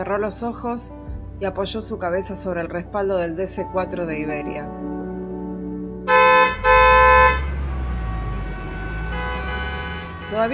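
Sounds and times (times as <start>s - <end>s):
speech: 0.0s - 4.9s, 10.3s - 10.5s
car horn blasts in a traffic jam: 6.1s - 10.5s
low rumble of idling traffic in a traffic jam: 6.1s - 10.5s.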